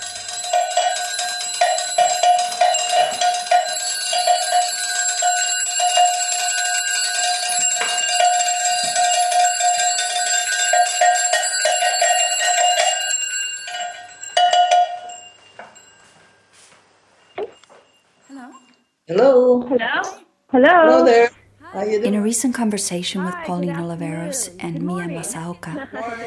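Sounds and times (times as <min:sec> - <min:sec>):
bells ringing: 0:00.0 - 0:18.8
speech: 0:19.1 - 0:26.2.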